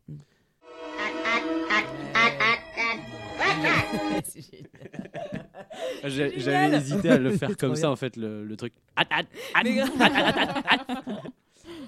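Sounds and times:
voice imitating a little Martian's nasal quacking squawk: 0.8s - 3.9s
laughter: 1.0s - 7.8s, 9.0s - 11.4s
speech: 3.9s - 11.4s.

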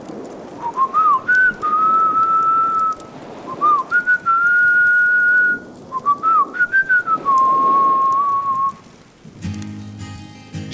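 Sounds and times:
soft crackling: 0.0s - 10.2s
hissy noise: 0.1s - 9.0s
person whistling a guitar tune: 0.7s - 8.8s.

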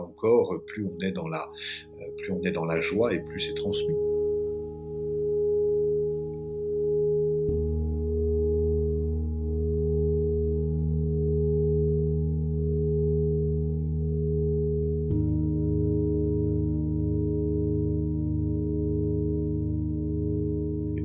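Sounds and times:
speech: 0.1s - 4.1s
singing bowl struck or rubbed, humming: 1.8s - 21.0s.

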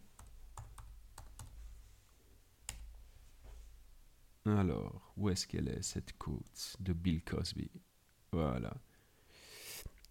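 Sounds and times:
typing on a computer keyboard: 0.2s - 1.6s
speech: 4.5s - 8.9s.

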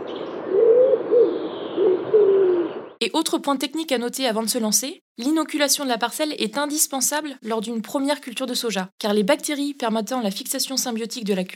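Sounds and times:
pigeons cooing: 0.4s - 2.9s
speech: 3.0s - 11.5s.

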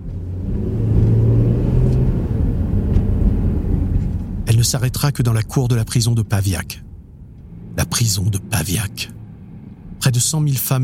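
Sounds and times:
car engine speeding off from a street: 0.0s - 5.0s, 6.8s - 10.4s
speech: 4.6s - 6.9s, 7.8s - 9.2s, 10.1s - 10.8s.

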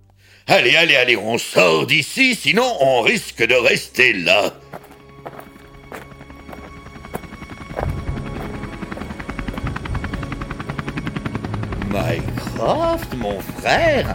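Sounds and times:
speech: 0.4s - 4.8s, 12.6s - 14.1s
helicopter rotor thudding while landing: 5.0s - 14.1s.

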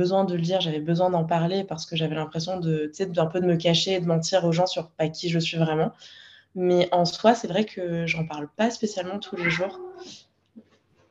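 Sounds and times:
speech: 0.0s - 10.2s
pet cat vocalizing: 9.2s - 10.2s.

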